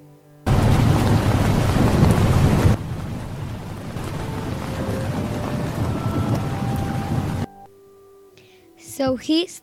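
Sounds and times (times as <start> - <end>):
thunder rumbling: 0.5 - 7.6
heavy rain pouring: 0.5 - 7.7
speech: 9.0 - 9.6.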